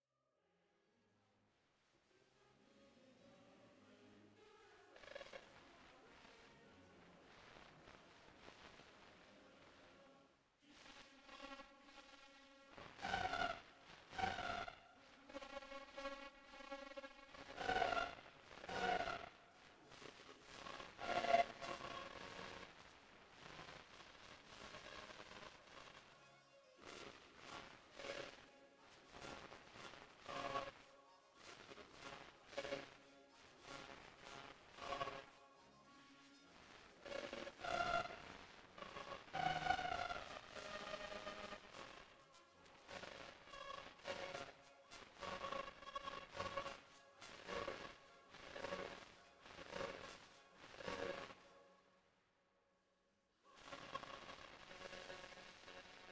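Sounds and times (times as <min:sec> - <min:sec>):
distortion isolated by difference technique: 0:01.2 - 0:56.0.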